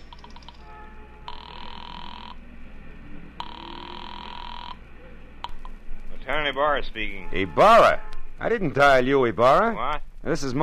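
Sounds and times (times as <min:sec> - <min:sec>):
electronic ringback tones on a telephone line: 0:00.0 - 0:02.4, 0:03.4 - 0:04.8
speech: 0:06.3 - 0:10.6.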